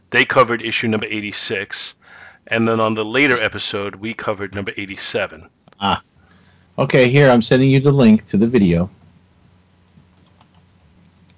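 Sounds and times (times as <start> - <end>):
steady low hum: 0.0 - 9.8
speech: 0.1 - 6.1, 6.8 - 9.0
typing on a computer keyboard: 10.1 - 10.6.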